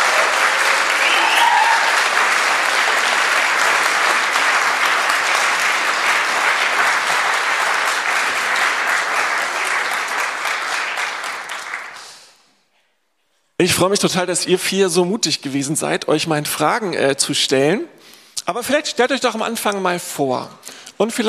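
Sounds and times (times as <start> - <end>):
sizable audience applauding: 0.0 - 12.2
speech: 13.6 - 21.2.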